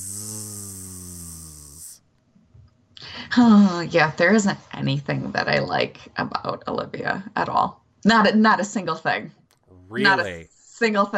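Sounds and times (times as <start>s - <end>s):
person imitating snoring: 0.0s - 2.0s, 9.8s - 10.4s
speech: 3.4s - 11.1s.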